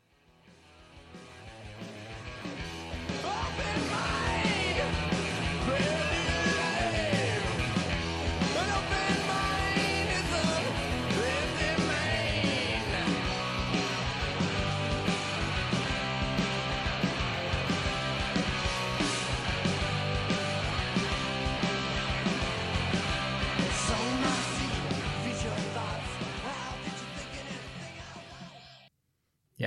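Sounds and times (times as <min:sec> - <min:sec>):
heavy distorted guitars in an early grunge rock song: 0:00.0 - 0:28.8.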